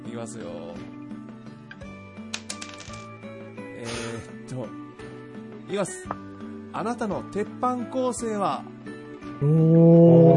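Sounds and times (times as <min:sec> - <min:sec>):
speech: 0:00.2 - 0:01.0, 0:03.8 - 0:04.9, 0:05.7 - 0:08.7, 0:09.4 - 0:10.3
physical die clattering and rattling: 0:02.4 - 0:03.1.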